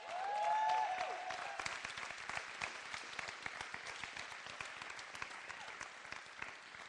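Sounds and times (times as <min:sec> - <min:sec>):
whistle or cheer: 0:00.0 - 0:01.6
sizable crowd applauding a couple's one-year anniversary: 0:00.0 - 0:06.8.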